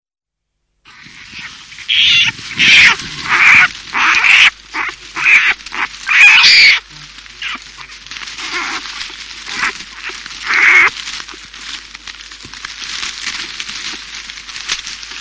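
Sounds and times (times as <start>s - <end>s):
steady hiss: 0.8s - 15.1s
American black bear giving harsh high-pitched calls: 0.9s - 11.5s.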